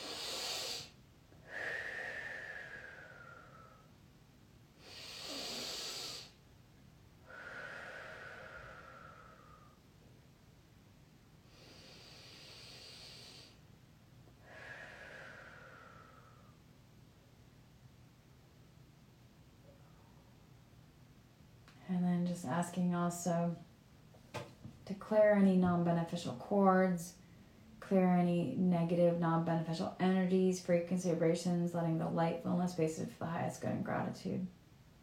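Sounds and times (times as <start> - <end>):
slow deep breaths during a meditation: 0.0 - 3.9, 4.8 - 6.4, 7.2 - 9.9, 11.4 - 13.6, 14.4 - 16.6
speech: 21.9 - 23.6, 25.0 - 27.2, 27.9 - 34.6.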